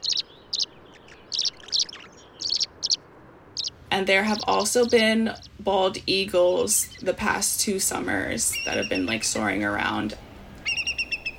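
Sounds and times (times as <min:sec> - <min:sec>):
tree swallow chirps and twitters along the creek in Mastic, Long Island, New York: 0:00.0 - 0:05.6, 0:06.8 - 0:07.1, 0:08.4 - 0:10.0, 0:10.6 - 0:11.3
faint background hiss: 0:00.0 - 0:11.3
speech: 0:04.0 - 0:10.3.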